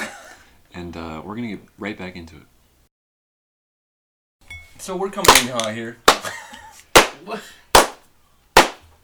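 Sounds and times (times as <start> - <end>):
speech: 0.8 - 2.5, 4.8 - 6.0, 7.2 - 7.6
sharp loud hand claps: 5.2 - 8.0, 8.6 - 8.9.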